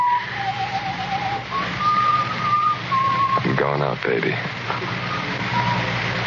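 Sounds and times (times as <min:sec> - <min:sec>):
person whistling a slow wavering melody: 0:00.0 - 0:03.6, 0:05.0 - 0:06.0
steady low hum: 0:00.0 - 0:06.2
speech: 0:03.7 - 0:05.3.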